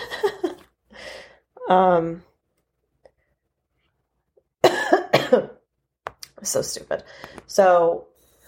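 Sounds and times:
speech: 1.7 - 2.3, 5.3 - 5.6, 6.4 - 8.1
person coughing: 4.6 - 5.6.

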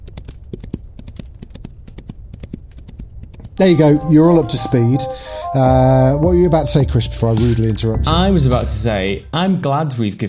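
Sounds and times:
horse hooves galloping: 0.0 - 3.6
speech: 3.6 - 10.2.

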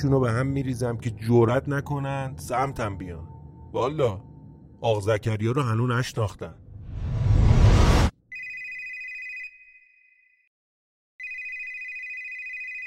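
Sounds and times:
speech: 0.0 - 6.6
loud broadband whoosh of noise: 6.7 - 8.1
telephone electronic ring: 8.3 - 10.0, 11.2 - 12.8.

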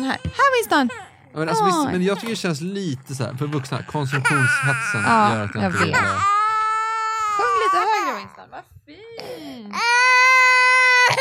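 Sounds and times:
baby crying: 0.0 - 2.2, 3.4 - 8.4, 9.2 - 11.1
speech: 0.1 - 6.4, 8.2 - 10.2.

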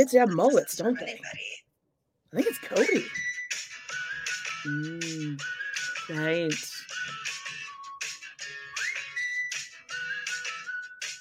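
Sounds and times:
speech: 0.0 - 1.6, 2.3 - 3.3, 4.6 - 7.2
person whistling a wandering tune: 3.9 - 11.1.

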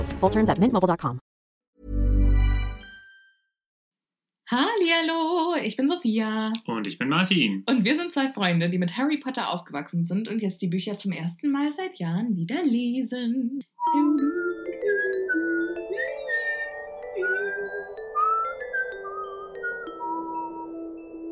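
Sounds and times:
speech: 0.0 - 1.2, 4.5 - 16.2
person whistling a flowing melody: 13.7 - 20.9.

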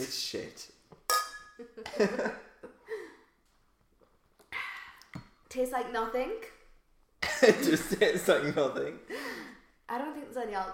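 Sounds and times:
speech: 0.0 - 0.7, 2.0 - 2.4, 5.5 - 6.6, 7.4 - 9.2, 9.9 - 10.7
drinking glasses clinking in a toast: 1.1 - 1.6.

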